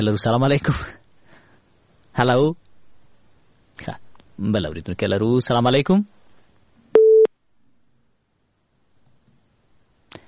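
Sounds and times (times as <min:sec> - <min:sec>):
speech: 0:00.0 - 0:01.0, 0:02.2 - 0:02.6, 0:03.8 - 0:06.2
telephone busy tone after a call is cut off: 0:07.0 - 0:07.3.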